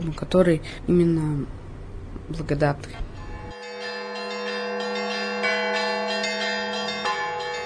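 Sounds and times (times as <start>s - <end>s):
speech: 0.0s - 1.6s, 2.2s - 3.1s
church bells ringing in a continuous peal: 3.2s - 7.6s.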